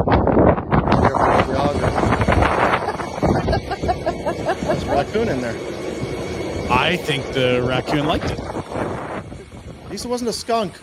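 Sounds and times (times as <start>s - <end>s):
strong wind buffeting the microphone in a played video: 0.0s - 10.8s
laughter: 1.8s - 5.6s
speech: 5.0s - 5.9s, 6.7s - 8.6s, 10.0s - 10.8s.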